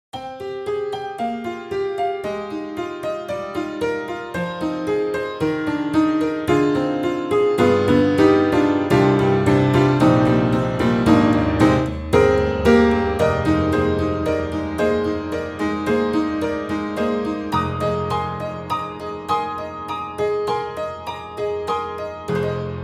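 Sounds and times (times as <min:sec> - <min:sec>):
electric tack upright piano: 0:00.1 - 0:22.8.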